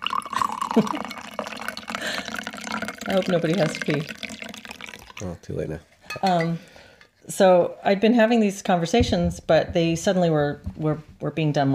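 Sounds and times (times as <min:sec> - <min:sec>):
coffee pouring into a cup: 0:00.0 - 0:05.4
speech: 0:00.8 - 0:01.1, 0:03.1 - 0:04.3, 0:05.2 - 0:06.7, 0:07.3 - 0:11.7.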